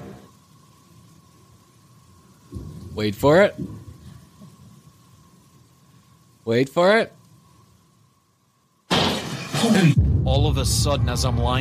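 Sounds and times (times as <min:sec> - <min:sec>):
faint steady hum: 0:00.0 - 0:11.6
speech: 0:03.0 - 0:03.8, 0:06.5 - 0:07.2, 0:09.6 - 0:11.6
soda can dropped with a loud crash: 0:08.9 - 0:09.6.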